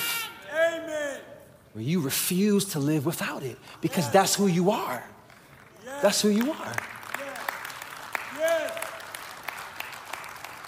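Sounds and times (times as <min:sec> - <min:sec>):
speech: 0:01.8 - 0:05.2, 0:05.9 - 0:07.0
light golf-clap applause from a small crowd: 0:05.2 - 0:10.6.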